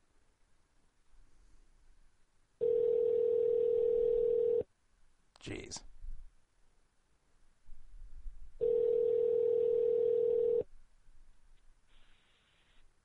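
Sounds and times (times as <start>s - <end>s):
faint low noise on a telephone line: 0.0s - 13.0s
steady telephone ringback tone: 2.6s - 4.6s, 8.6s - 10.6s
speech: 5.4s - 5.9s.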